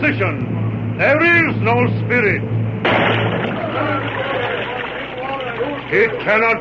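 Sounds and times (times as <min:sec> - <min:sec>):
speech: 0:00.0 - 0:04.5, 0:05.9 - 0:06.5
water bubbling and churning: 0:03.2 - 0:06.2.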